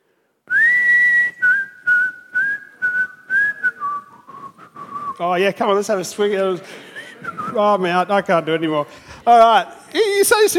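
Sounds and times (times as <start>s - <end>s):
person whistling a short tune: 0.5s - 5.2s, 6.9s - 7.6s
speech: 5.2s - 10.5s.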